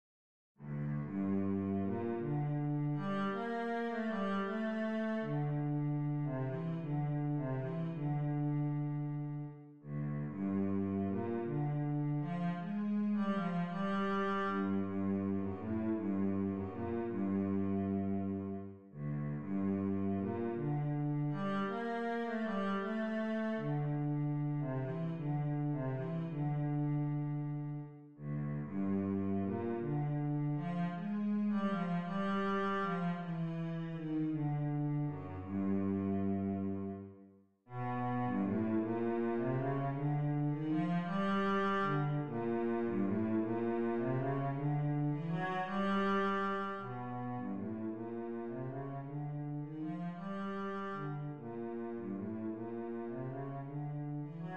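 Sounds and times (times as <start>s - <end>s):
cello playing a sicilienne: 0.6s - 54.5s.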